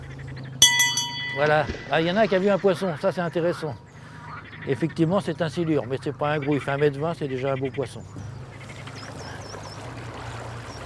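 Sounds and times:
low boat engine hum: 0.0 - 10.8
boat's bell rung by a passenger: 0.6 - 3.6
speech: 1.4 - 3.9, 4.7 - 8.2.

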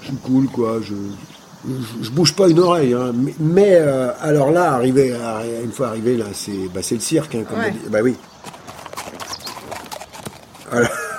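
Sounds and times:
speech: 0.1 - 8.3, 10.8 - 11.0
horse hooves clip-clopping on a hard surface: 6.5 - 11.1
laughter: 10.6 - 11.1.

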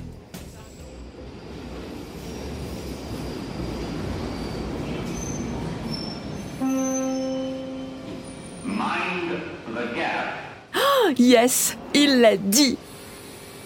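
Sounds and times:
train carriage rumbling on rails: 0.2 - 6.6
metallic squeal of train wheels on rails: 0.4 - 9.1
speech: 11.2 - 12.8.

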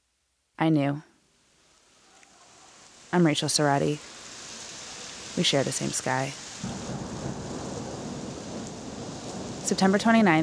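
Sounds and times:
speech: 0.6 - 1.1, 3.1 - 4.2, 5.4 - 6.8, 9.7 - 10.4
heavy rain: 1.4 - 10.4
deep low thunder rumbling: 3.3 - 10.4.

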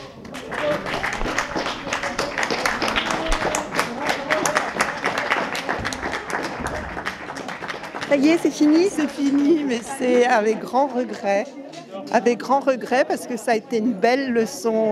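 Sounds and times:
large audience applauding after a performance: 0.0 - 10.0
faint crowd voices: 0.0 - 14.8
speech: 8.1 - 14.8.

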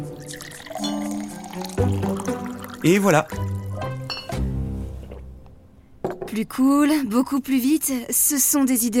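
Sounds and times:
water poured into a glass: 0.2 - 3.7
speech: 2.8 - 3.4, 6.4 - 8.9.

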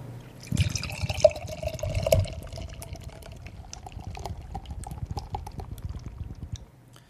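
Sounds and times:
Spanish beer pouring from a 47-centilitre can into a big glass: 0.4 - 6.6.

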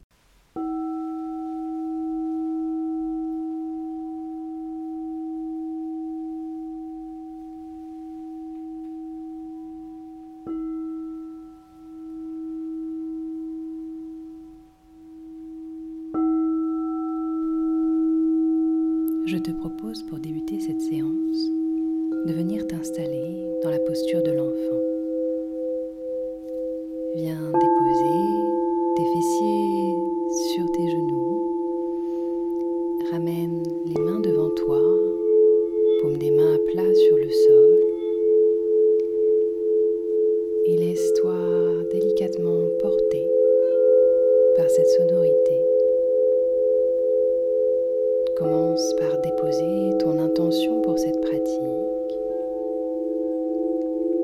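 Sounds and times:
crystal singing bowls ringing during a yin yoga practice: 0.5 - 54.2
soft shimmering textures: 0.6 - 54.2.

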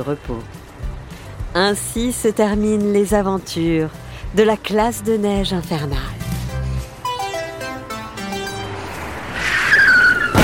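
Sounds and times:
speech: 0.0 - 0.6, 1.5 - 6.2
descending tonal notes: 7.0 - 10.4
bus tire puncturing: 9.6 - 10.4.

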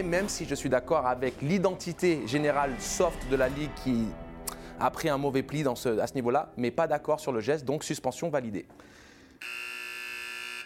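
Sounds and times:
speech: 0.0 - 4.2, 4.8 - 9.6
loud basketball buzzer with harsh electronic tone: 9.4 - 10.6.

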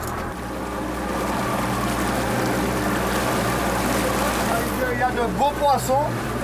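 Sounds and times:
boat engine droning on a river: 0.0 - 6.4
rushing water on a river: 0.0 - 6.4
speech: 5.2 - 6.4.

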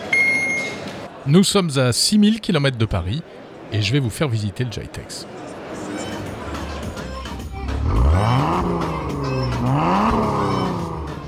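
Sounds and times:
speech: 1.2 - 5.4
powerful car engine revving with throttle blips: 6.9 - 11.2.

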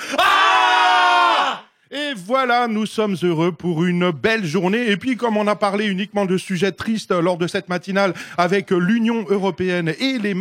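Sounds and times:
group shouting together in studio: 0.0 - 1.7
speech: 2.2 - 10.3.

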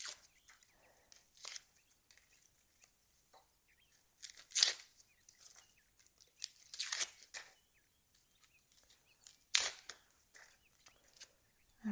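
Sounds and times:
onion skin being peeled off by hand: 0.0 - 2.9, 3.9 - 7.6, 8.4 - 11.3.

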